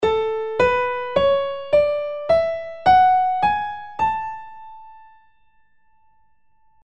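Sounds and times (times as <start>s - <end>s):
A major scale played: 0.0s - 5.0s.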